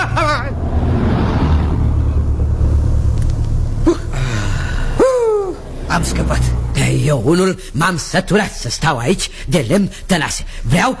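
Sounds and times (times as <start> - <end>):
Fiat car engine rumbling while overtaking on a road: 0.0 - 8.3
road noise: 0.0 - 8.3
speech: 7.1 - 10.9.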